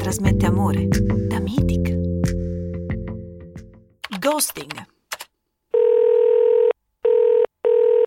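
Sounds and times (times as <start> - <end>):
speech: 0.1 - 1.9, 4.3 - 4.9
electronic telephone call tone: 5.7 - 8.0.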